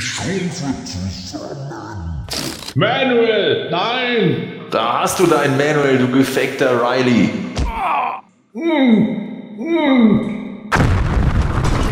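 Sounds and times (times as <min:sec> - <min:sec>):
speech: 0:00.2 - 0:07.5, 0:08.5 - 0:10.3
person letting out strained rising groans: 0:07.6 - 0:10.2
explosion with rough roaring noise: 0:10.7 - 0:11.9.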